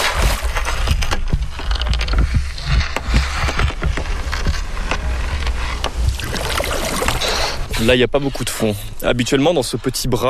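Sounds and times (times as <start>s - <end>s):
knocks and creaks from large wooden river boat hull: 0.0s - 8.0s
low rumbling undertone: 0.1s - 9.0s
shallow water splashing and lapping against large wooden river boat: 5.6s - 7.8s
speech: 7.8s - 10.2s.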